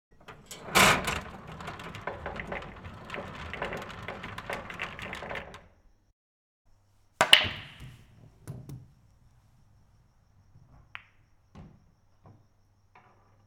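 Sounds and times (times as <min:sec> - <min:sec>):
pool eight ball sounds: 0:00.2 - 0:05.7, 0:07.3 - 0:09.1.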